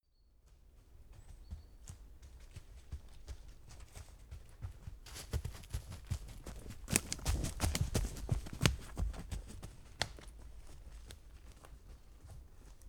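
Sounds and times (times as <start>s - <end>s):
person running on a forest path: 1.0s - 10.8s.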